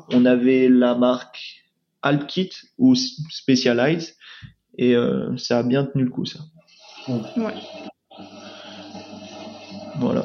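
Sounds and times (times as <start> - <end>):
speech: 0.1 - 7.9
dishwasher running with rushing water noise: 6.9 - 10.2.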